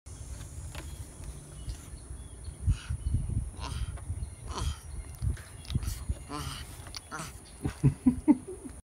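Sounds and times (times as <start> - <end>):
crested porcupine: 2.6 - 7.8.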